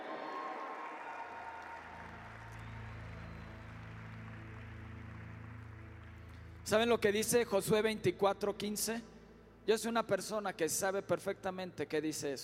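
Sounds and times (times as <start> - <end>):
large crowd applauding and cheering: 0.0 - 7.6
low keyboard-like drone: 1.9 - 9.7
speech: 6.7 - 12.4.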